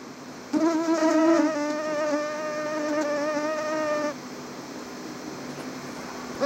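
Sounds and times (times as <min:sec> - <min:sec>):
faint hum: 0:00.0 - 0:06.4
mosquito buzzing: 0:00.5 - 0:04.2.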